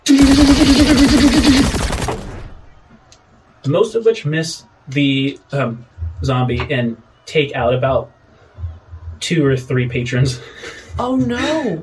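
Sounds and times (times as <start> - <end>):
sci-fi Gatling laser rifle firing: 0.0 - 2.8
speech: 0.4 - 1.5, 3.6 - 8.2, 9.2 - 11.8.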